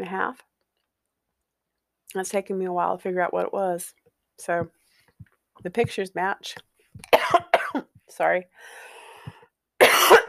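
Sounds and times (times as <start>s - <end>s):
speech: 0.0s - 0.5s, 2.1s - 4.8s, 5.6s - 8.9s
harsh coughs: 7.0s - 7.9s, 9.8s - 10.2s.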